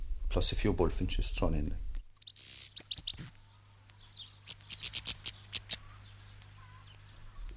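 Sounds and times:
low steady hum: 0:00.0 - 0:07.5
speech: 0:00.4 - 0:01.9, 0:03.2 - 0:03.4
siskin chirping: 0:02.0 - 0:07.5.

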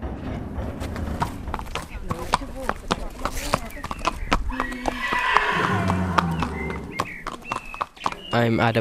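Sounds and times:
horse hooves clip-clopping at a riding centre in Ireland: 0:00.0 - 0:08.7
horse whinnying at a riding centre in Ireland: 0:04.5 - 0:08.2.

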